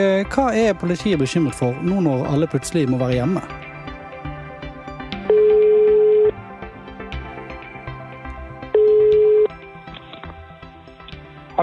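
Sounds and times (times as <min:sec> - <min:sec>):
speech: 0:00.0 - 0:03.6
soft music: 0:00.0 - 0:11.6
telephone ringback tone: 0:05.2 - 0:06.5, 0:08.6 - 0:09.6.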